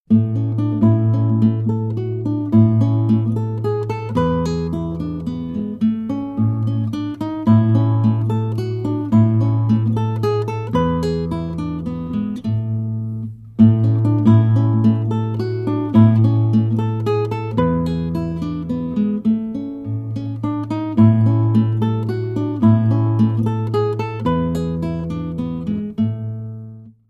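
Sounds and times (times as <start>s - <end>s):
guitar Ländler folk music from Chiemgau: 0.1s - 27.0s.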